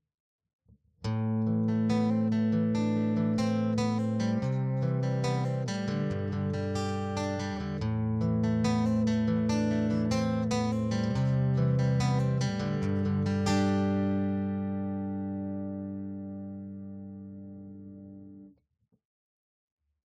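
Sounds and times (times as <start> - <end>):
Gibson J 200 acoustic guitar direct input via Line 6 Variax JTV-69: 1.1 - 18.4.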